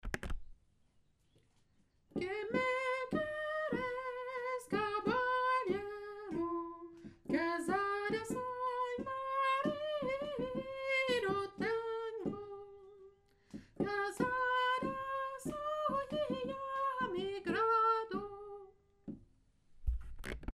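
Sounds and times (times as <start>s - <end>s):
soprano singing: 2.2s - 13.2s, 13.8s - 18.8s.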